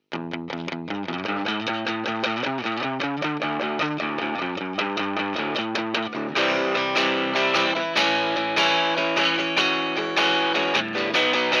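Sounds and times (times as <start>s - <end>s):
buzz saw guitar through Line 6 M13 processor, trebly, strings hitting frets: 0.0s - 11.5s.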